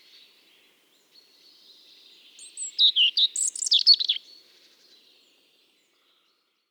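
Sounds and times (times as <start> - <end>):
European robin Erithacus rubecula singing: 2.4 - 4.2.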